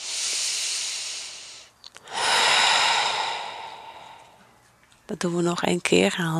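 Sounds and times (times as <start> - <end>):
deep breath in during a guided relaxation exercise: 0.0 - 4.6
speech: 5.1 - 6.3.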